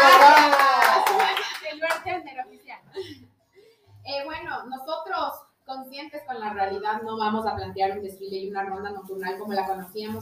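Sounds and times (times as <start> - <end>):
applause from a small group: 0.0 - 2.1
speech: 7.0 - 10.2.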